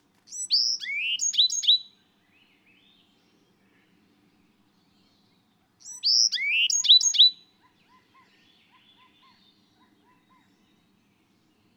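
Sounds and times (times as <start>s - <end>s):
bird song of clear high whistled notes: 0.3s - 1.9s, 5.8s - 7.4s.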